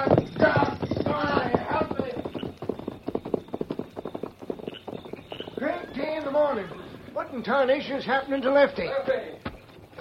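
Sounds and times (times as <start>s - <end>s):
horse hooves clip-clopping on a hard surface: 0.0s - 10.0s
speech: 7.4s - 9.4s.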